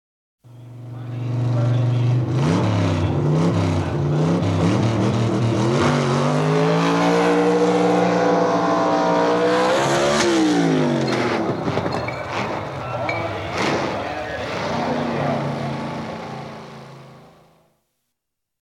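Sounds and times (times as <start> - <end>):
drag racing car: 0.5 - 17.6
drag racing car drive shaft breaking: 9.7 - 14.9.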